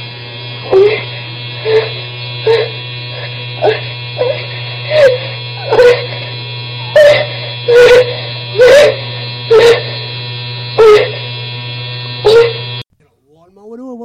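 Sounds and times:
vibrator droning with a steady electric buzz and louder pulses: 0:00.0 - 0:12.9.

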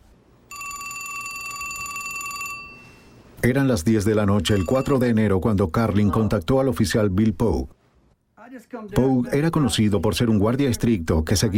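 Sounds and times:
telephone ringing with a bright metallic trill: 0:00.5 - 0:03.1, 0:04.3 - 0:05.3
speech: 0:03.4 - 0:07.8, 0:08.6 - 0:11.5.

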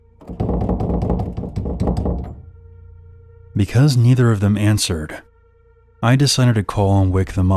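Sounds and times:
doorknob grabbed and twisted hard, rattling against the door: 0:00.2 - 0:02.5
speech: 0:03.6 - 0:05.3, 0:06.0 - 0:07.5.

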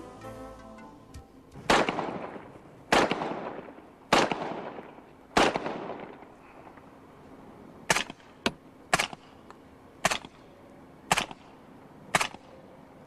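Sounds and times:
suppressed submachine gun shots: 0:01.6 - 0:06.3, 0:11.1 - 0:11.5, 0:12.1 - 0:12.5
unsuppressed submachine gun shots: 0:01.6 - 0:06.3, 0:11.1 - 0:11.5, 0:12.1 - 0:12.5.

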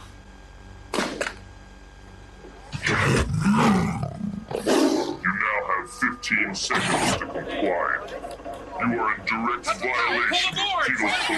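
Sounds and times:
movie robot's lion-like roar sound effect: 0:02.7 - 0:05.3, 0:06.7 - 0:07.3
speech: 0:06.2 - 0:08.2, 0:08.8 - 0:11.3.

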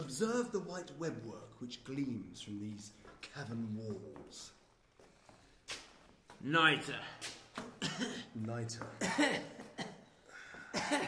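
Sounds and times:
speech: 0:00.2 - 0:04.6, 0:06.4 - 0:10.0, 0:10.7 - 0:11.0
person coughing: 0:07.8 - 0:08.4, 0:09.0 - 0:10.1, 0:10.7 - 0:11.0.

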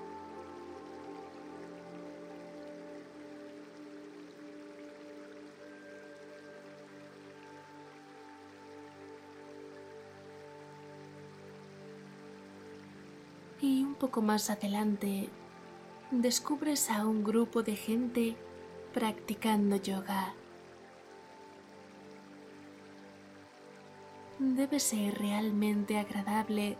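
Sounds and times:
faint sustained tones: 0:00.0 - 0:26.7
flowing river water: 0:00.0 - 0:26.7
speech: 0:13.6 - 0:15.4, 0:16.1 - 0:20.4, 0:24.4 - 0:26.7.

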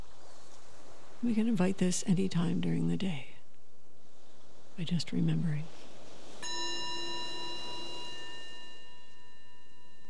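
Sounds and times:
speech: 0:01.2 - 0:03.3, 0:04.8 - 0:05.8
meditation bell ringing: 0:06.4 - 0:10.0.

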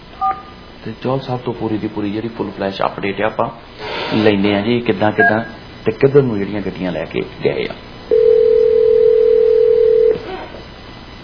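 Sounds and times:
speech: 0:00.8 - 0:07.8
telephone tone during a call attempt: 0:08.1 - 0:10.3.

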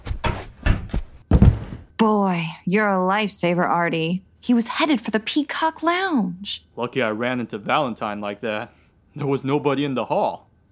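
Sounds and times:
door being pushed shut: 0:00.0 - 0:01.8
speech: 0:02.0 - 0:10.6.

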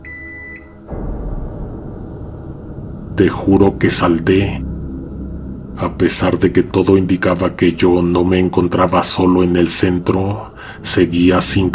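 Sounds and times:
microwave oven beeping: 0:00.0 - 0:00.8
loud dense rumbling noise: 0:00.9 - 0:08.1
speech: 0:03.2 - 0:04.7, 0:05.8 - 0:11.7.

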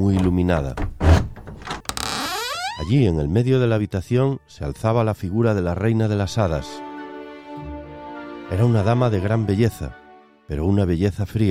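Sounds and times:
speech: 0:00.0 - 0:01.0, 0:02.9 - 0:06.8, 0:08.5 - 0:11.5
heavy door thudding: 0:00.0 - 0:02.9.

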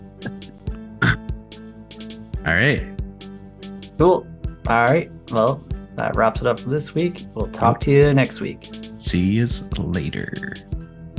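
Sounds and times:
person coughing: 0:01.0 - 0:01.4
speech: 0:02.4 - 0:03.0, 0:04.0 - 0:10.7.

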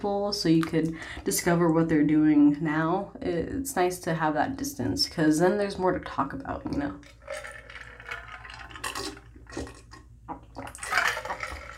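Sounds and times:
speech: 0:00.0 - 0:07.6
ice cubes rattling in a water bottle: 0:07.0 - 0:11.7.

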